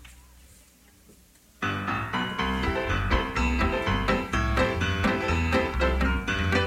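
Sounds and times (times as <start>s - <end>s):
brisk military march by a band: 2.2s - 6.6s.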